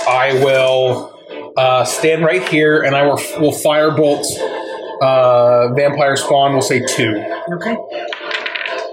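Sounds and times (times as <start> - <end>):
speech: 0.1 - 8.2
two dice tumbling across a table: 8.1 - 8.8.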